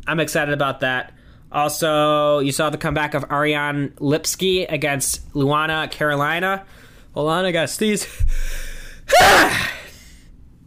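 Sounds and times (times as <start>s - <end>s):
speech: 0.0s - 9.8s
loud explosive sneeze: 9.1s - 9.9s.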